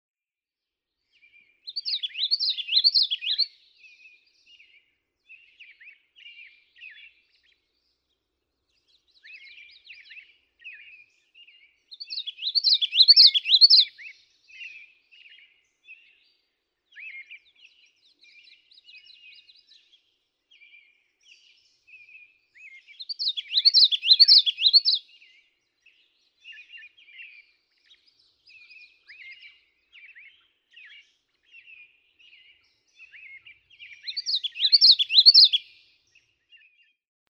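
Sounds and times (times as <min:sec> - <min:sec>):
common yellowthroat singing: 0:01.2 - 0:37.0.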